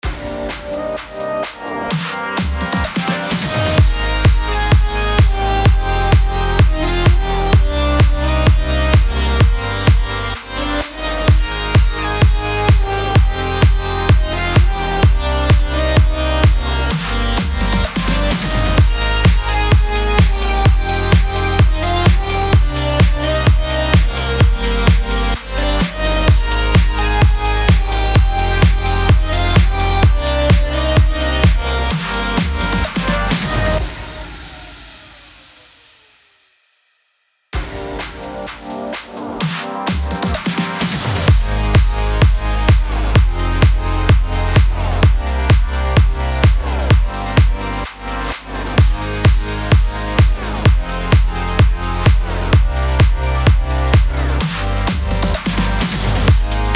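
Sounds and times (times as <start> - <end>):
progressive house music bed in G sharp minor: 0.0 - 36.0, 37.6 - 56.7.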